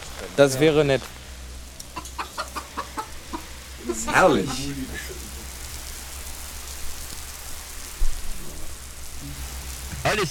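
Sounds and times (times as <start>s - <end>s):
low hum: 0.0s - 10.2s
speech: 0.2s - 1.2s, 4.1s - 5.2s, 10.1s - 10.2s
chicken clucking: 1.9s - 4.2s.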